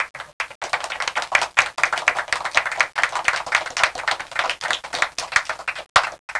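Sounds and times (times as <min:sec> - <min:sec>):
applause: 0:00.0 - 0:06.3.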